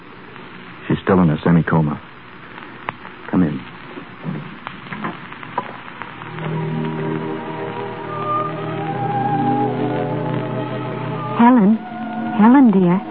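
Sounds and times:
speech: 0:00.9 - 0:02.1, 0:03.4 - 0:04.4
heavy rain falling: 0:06.3 - 0:13.0
low sustained hum or musical tone: 0:06.3 - 0:13.0.

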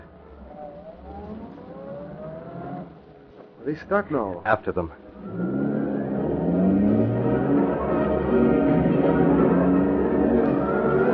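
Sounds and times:
car engine revving and accelerating through gear changes: 0:00.3 - 0:03.2, 0:05.1 - 0:11.1
speech: 0:03.6 - 0:05.5.

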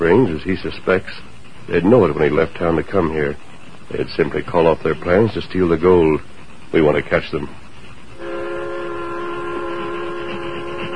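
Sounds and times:
speech: 0:00.0 - 0:07.6
steam train climbing a slope on Jackknife Hill: 0:00.0 - 0:10.9
sustained droning steam train whistle: 0:08.2 - 0:10.9.

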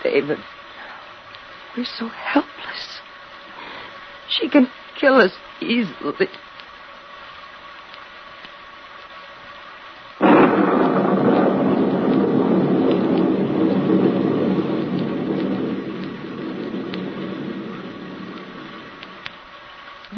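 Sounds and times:
speech: 0:00.0 - 0:00.6, 0:01.8 - 0:03.0, 0:04.3 - 0:06.5
heavy rain: 0:00.0 - 0:20.1
sudden loud burst: 0:10.2 - 0:20.0.

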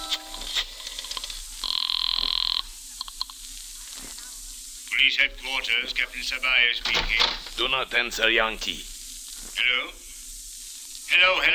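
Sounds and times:
brief electronic telephone tones: 0:00.0 - 0:00.6
telephone ringing down the line with a buzzy trill: 0:00.0 - 0:01.0
telephone line clicks from a phone booth call: 0:00.0 - 0:03.4
speech: 0:05.1 - 0:08.9, 0:09.6 - 0:10.0, 0:11.1 - 0:11.5.

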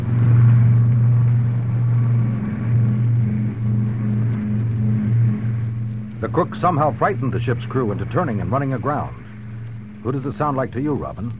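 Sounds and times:
speeding car engine rumbling: 0:00.0 - 0:11.3
speech: 0:06.3 - 0:09.2, 0:10.0 - 0:11.3.

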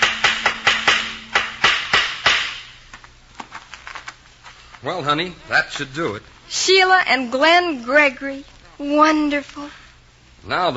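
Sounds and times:
hammer driving nails while putting up a sign outside a house: 0:00.0 - 0:02.8
speech: 0:04.8 - 0:09.8, 0:10.4 - 0:10.7.

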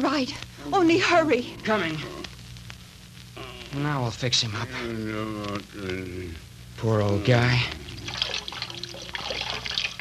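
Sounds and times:
speech: 0:00.2 - 0:02.2, 0:03.7 - 0:08.2
cold water poured to bathe a head trickling and splashing: 0:08.0 - 0:09.9.

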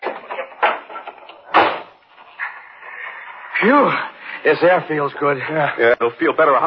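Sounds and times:
door opening and closing: 0:00.0 - 0:02.5
speech: 0:03.6 - 0:06.6.

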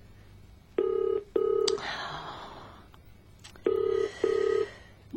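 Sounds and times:
telephone ringing in double bursts: 0:00.8 - 0:01.8, 0:03.6 - 0:04.8.

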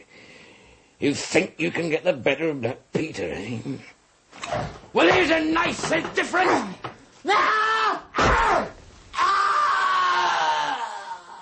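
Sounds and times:
speech: 0:01.0 - 0:08.7
man screaming: 0:07.2 - 0:11.3.

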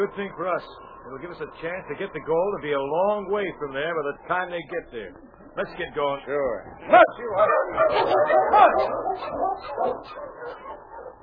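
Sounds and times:
speech: 0:00.0 - 0:10.7
dog barking: 0:07.4 - 0:11.2.

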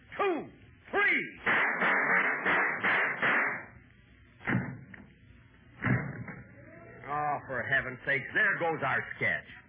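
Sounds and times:
dense steady noise: 0:00.0 - 0:09.6
gunshot sound effects: 0:01.4 - 0:03.8
speech: 0:07.9 - 0:09.6.

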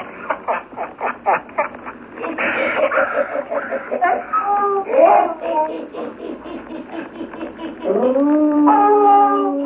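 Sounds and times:
laughter: 0:00.0 - 0:08.2
pack of frightened sled dogs whimpering and yelping: 0:03.8 - 0:05.7, 0:07.6 - 0:09.6
sled dogs overlapping whining cries: 0:03.8 - 0:06.2, 0:06.9 - 0:09.6
sled dog long loud sustained howl: 0:04.0 - 0:05.6, 0:07.8 - 0:09.6.

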